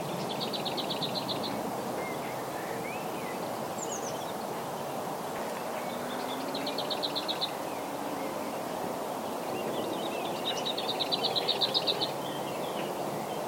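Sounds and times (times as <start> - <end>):
lesser whitethroat singing: 0.0 - 13.4.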